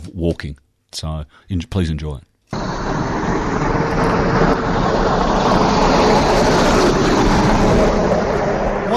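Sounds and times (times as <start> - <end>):
speech: 0.2 - 6.6
heavy truck roaring past on a busy road: 2.6 - 8.9.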